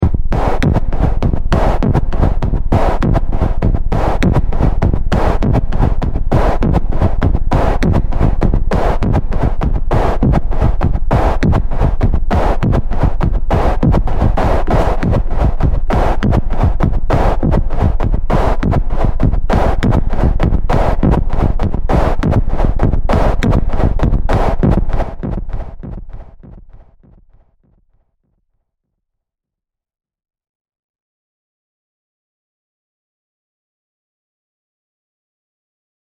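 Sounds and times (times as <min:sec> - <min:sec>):
thumping mechanical robotic production rhythm of machinery: 0:00.0 - 0:26.9.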